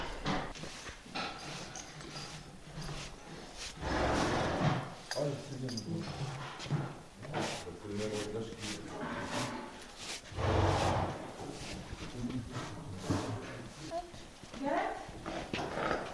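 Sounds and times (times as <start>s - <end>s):
horse hooves clopping and scuffing while being harnessed: 0.0s - 16.1s
horse rustle or snort: 0.6s - 5.5s, 6.1s - 13.9s, 15.2s - 16.1s
people talking: 5.2s - 6.3s, 7.2s - 9.5s, 12.0s - 15.0s.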